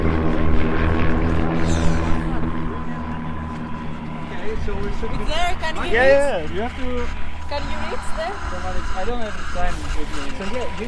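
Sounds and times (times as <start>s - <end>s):
propeller airplane droning overhead: 0.0s - 10.8s
speech: 4.7s - 10.8s.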